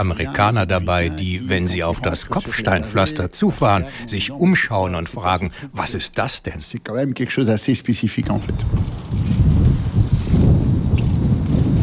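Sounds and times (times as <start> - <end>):
speech: 0.0 - 9.4
strong wind buffeting the microphone over an open race track: 8.2 - 11.8.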